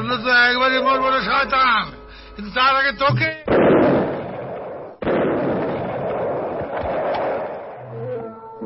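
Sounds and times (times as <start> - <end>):
speech: 0.1 - 3.9
bomb explosion: 3.5 - 7.9.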